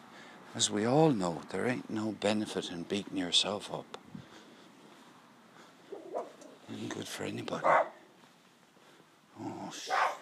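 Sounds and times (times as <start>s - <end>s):
speech: 0.5s - 4.0s, 6.9s - 7.9s
small dog yapping: 5.9s - 6.6s, 7.6s - 8.0s, 9.9s - 10.2s.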